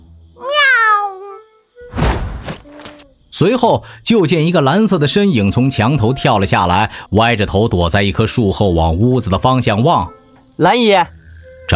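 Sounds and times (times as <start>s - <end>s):
child imitating a cute cat meow: 0.4s - 1.5s
noisy thumps: 1.8s - 3.0s
speech: 3.4s - 11.7s.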